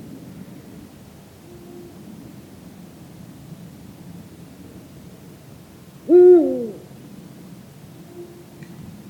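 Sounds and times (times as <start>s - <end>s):
Eurasian eagle-owl Bubo bubo hooting: 6.1s - 6.8s.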